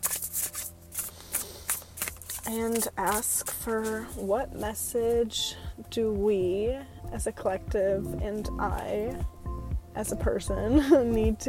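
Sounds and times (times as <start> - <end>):
deck of cards being shuffled, riffling and sliding: 0.0 - 4.7
speech: 2.5 - 9.4, 10.0 - 11.4.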